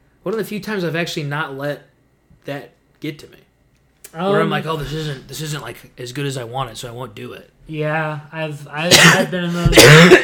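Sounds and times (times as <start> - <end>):
speech: 0.2 - 3.5, 4.1 - 10.2
person getting over an illness coughing: 8.9 - 10.2.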